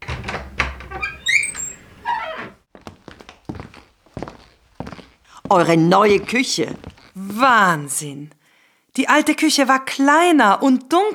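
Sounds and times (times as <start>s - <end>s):
door from a hallway into a kitchen creaking open: 0.0s - 5.0s
footsteps walking across a hard floor: 2.7s - 8.0s
speech: 5.5s - 8.4s, 9.0s - 11.1s.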